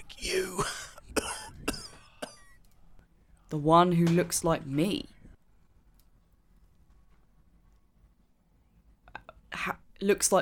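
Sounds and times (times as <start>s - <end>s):
person acting out a skull coughing and snarling: 0.0s - 2.6s
speech: 0.1s - 0.8s, 3.5s - 5.2s, 10.0s - 10.3s.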